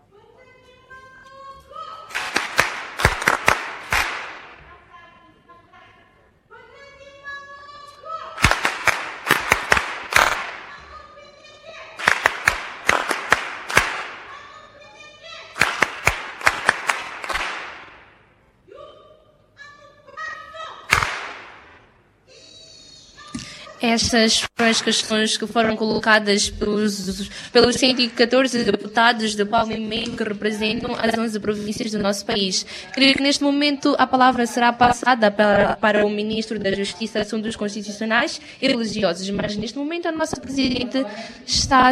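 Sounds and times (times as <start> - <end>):
group clapping in patterned rhythmic bursts: 2.1 - 4.7, 8.4 - 10.9, 12.0 - 14.4, 15.5 - 18.2, 20.9 - 21.9
speech: 23.8 - 41.9.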